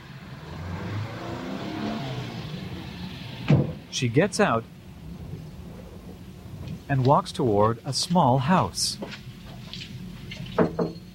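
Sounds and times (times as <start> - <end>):
car engine rumbling as the car is pulled to a halt in a compound: 0.0 - 11.1
speech: 3.9 - 4.8, 6.9 - 9.3.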